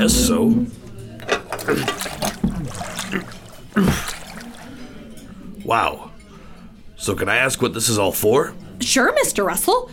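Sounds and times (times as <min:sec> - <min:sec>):
speech: 0:00.0 - 0:00.8, 0:01.7 - 0:04.2, 0:05.7 - 0:06.1, 0:07.0 - 0:09.9
water sloshing and splashing in a full aquarium being hoisted onto a table: 0:00.7 - 0:06.3.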